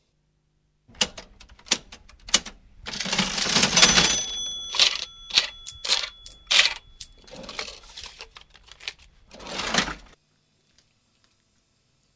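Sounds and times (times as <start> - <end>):
mechanical cash register clattering through keystrokes: 0.9 - 10.2
cash register bell-like ring: 3.8 - 7.2.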